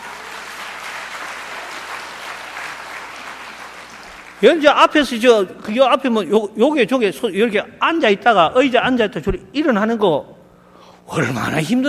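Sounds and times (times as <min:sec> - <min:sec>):
roomful of people applauding: 0:00.0 - 0:04.6
speech: 0:04.4 - 0:10.4, 0:11.1 - 0:11.8.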